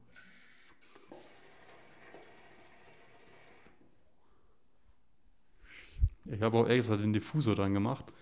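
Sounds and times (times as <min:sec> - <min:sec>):
person drawing on a tobacco pipe: 0:00.0 - 0:02.2
speech: 0:06.4 - 0:08.2.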